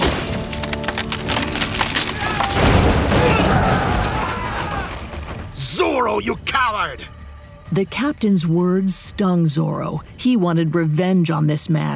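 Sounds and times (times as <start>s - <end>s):
heavy wooden bunk bed with slashed front legs collapsing: 0.0s - 5.6s
rumbling thud of falling wood: 0.0s - 5.6s
timber cracking: 0.0s - 5.7s
speech: 6.0s - 11.9s.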